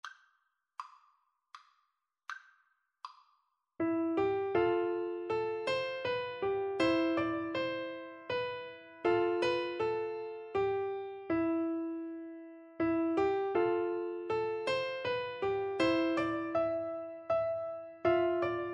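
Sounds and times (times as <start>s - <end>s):
piano duet: 3.8s - 18.7s.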